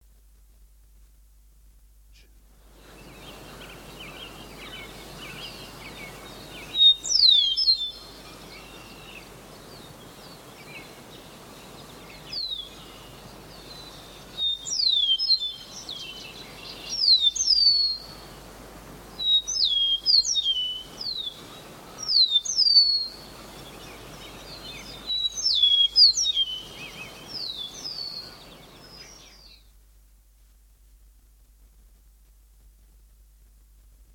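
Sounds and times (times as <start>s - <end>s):
songbirds: 2.2s - 29.9s
eastern meadowlark: 2.7s - 29.8s.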